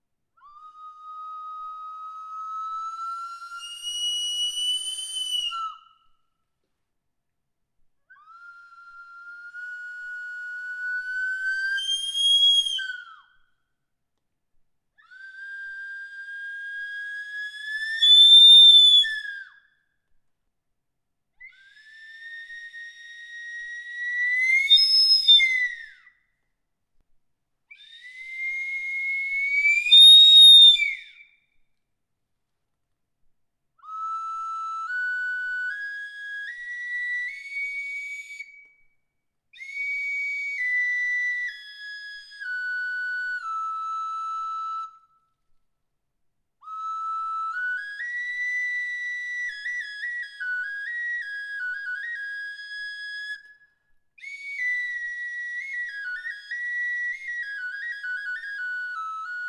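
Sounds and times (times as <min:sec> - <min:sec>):
tubular flute with plant-shaped bell: 0:00.3 - 0:06.6, 0:08.0 - 0:14.0, 0:14.9 - 0:20.3, 0:21.3 - 0:26.6, 0:27.7 - 0:31.8, 0:33.7 - 0:45.7, 0:46.6 - 0:59.4.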